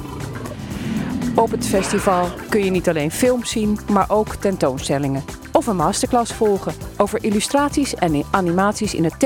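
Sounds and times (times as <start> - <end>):
tiger roaring: 0.0 - 3.8
speech: 1.4 - 9.2.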